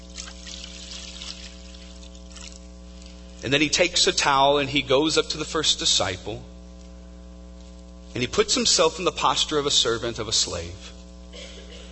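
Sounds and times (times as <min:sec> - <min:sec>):
water poured into a basin: 0:00.0 - 0:02.7
low constant hum: 0:00.0 - 0:11.9
speech: 0:03.4 - 0:06.5, 0:08.2 - 0:11.0.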